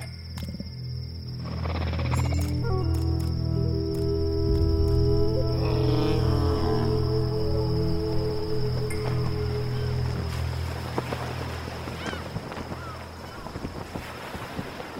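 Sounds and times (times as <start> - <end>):
low humming rumble: 0.7 - 13.5
steady cool sea breeze blowing at a bay with rocks: 3.6 - 14.9.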